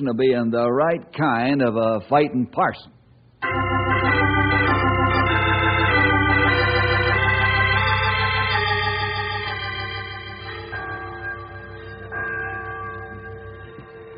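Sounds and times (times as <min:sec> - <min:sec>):
speech: 0:00.0 - 0:04.4
church bell ringing with deep sustained tones: 0:03.4 - 0:14.1.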